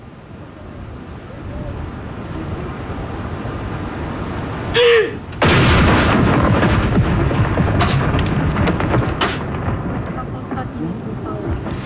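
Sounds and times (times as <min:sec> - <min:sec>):
outdoor wind noise: 0:00.0 - 0:11.8
person shouting a command: 0:04.8 - 0:05.2
cannon firing a salute shot: 0:05.4 - 0:10.8.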